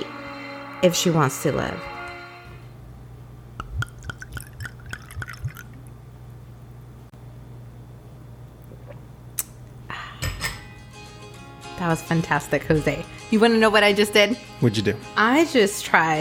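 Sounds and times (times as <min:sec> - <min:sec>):
speech: 0:00.8 - 0:01.9, 0:11.8 - 0:16.1
wine glugging from a bottle: 0:03.6 - 0:05.8
wine splashing: 0:03.6 - 0:05.9.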